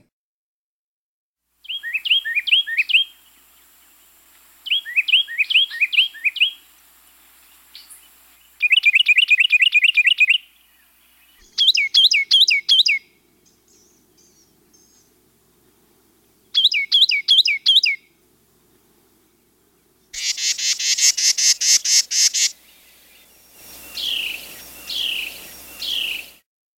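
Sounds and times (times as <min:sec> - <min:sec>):
Carolina wren singing whistled phrases and a harsh buzzy pulsed series: 0:01.6 - 0:04.0, 0:04.6 - 0:15.2, 0:16.4 - 0:18.0, 0:19.8 - 0:26.4.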